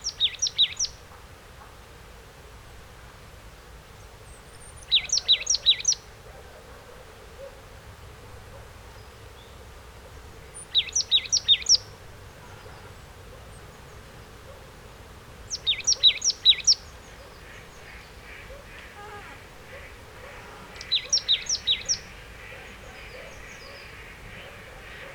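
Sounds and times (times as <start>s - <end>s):
marsh tit Poecile palustris calling: 0.0s - 1.0s, 4.8s - 6.0s, 10.6s - 11.9s, 15.5s - 25.1s
background hiss: 0.0s - 25.1s.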